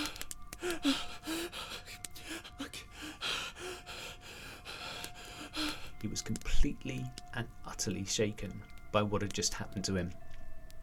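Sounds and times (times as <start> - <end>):
heavy panting after running: 0.0 - 6.0
speech: 6.0 - 10.2.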